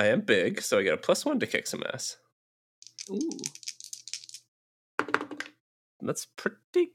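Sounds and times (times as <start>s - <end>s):
speech: 0.0s - 2.2s, 3.1s - 3.6s, 6.0s - 6.9s
dice rolling on a hard tabletop: 2.8s - 5.6s.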